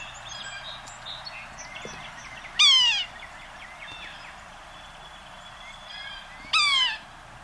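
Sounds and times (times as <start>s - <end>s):
yellow-bellied sapsucker soft kitten-like mewing calls: 0.0s - 7.2s.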